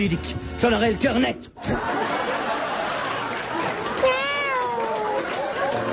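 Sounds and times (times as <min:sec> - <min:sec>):
speech: 0:00.0 - 0:02.1
laughter: 0:01.6 - 0:05.9
cat meowing: 0:04.0 - 0:05.1.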